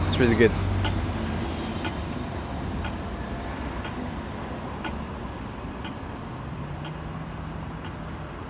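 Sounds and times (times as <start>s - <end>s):
pelican crossing signal ticking: 0.0s - 8.1s
steady low rumble of street traffic: 0.0s - 8.4s.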